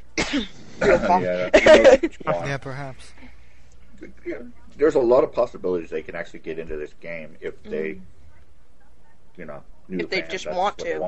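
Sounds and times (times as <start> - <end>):
short cough: 0.2 - 1.9
speech: 0.3 - 3.2, 4.0 - 8.2, 9.4 - 11.0.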